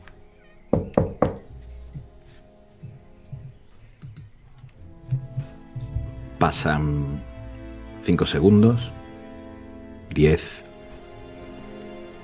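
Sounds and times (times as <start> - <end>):
knocking on a door: 0.7 - 2.1
faint low thumps: 0.7 - 7.6
shuffling: 1.4 - 6.5
speech: 6.4 - 7.3, 8.0 - 9.0, 10.2 - 10.6.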